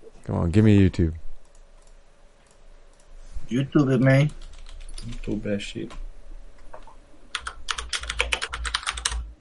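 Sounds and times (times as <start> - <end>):
speech: 0.3 - 1.2, 3.5 - 6.0
typing on a loud old computer keyboard: 4.3 - 5.3, 7.3 - 9.3.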